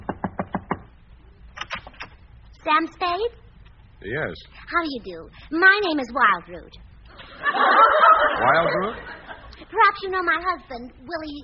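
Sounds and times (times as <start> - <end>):
woman knocking on a wooden door: 0.0 - 0.9
speech: 2.6 - 3.4, 4.0 - 6.8, 7.4 - 9.1, 9.7 - 11.4
laughter: 7.1 - 9.6.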